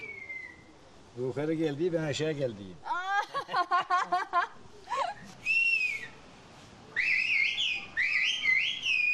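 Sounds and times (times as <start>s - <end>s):
whistled language used to communicate: 0.0s - 0.7s, 5.4s - 6.2s, 6.9s - 9.1s
speech: 1.2s - 4.6s
laughter: 3.1s - 5.2s.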